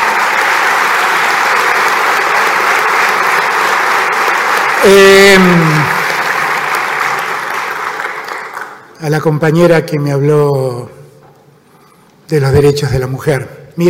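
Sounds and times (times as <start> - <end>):
audience applause at a university question-and-answer event: 0.0 - 8.9
speech: 4.8 - 6.0, 9.0 - 11.0, 12.3 - 13.8.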